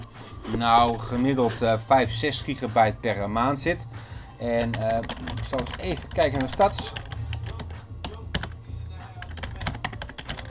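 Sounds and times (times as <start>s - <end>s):
speech: 0.5s - 7.1s
computer keyboard touch-typing with ten fingers: 4.5s - 8.6s, 9.2s - 10.4s.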